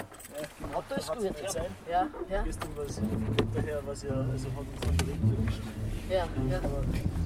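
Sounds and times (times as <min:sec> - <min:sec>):
people talking inside a moving car: 0:00.4 - 0:07.1
low road and engine rumble of a moving car: 0:02.2 - 0:07.2.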